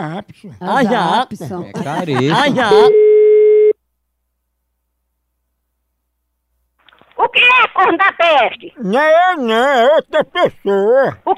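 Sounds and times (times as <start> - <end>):
speech: 0.0 - 3.1, 7.3 - 11.3
laughter: 0.7 - 2.8, 9.4 - 11.3
telephone busy tone after hang-up: 2.7 - 3.8.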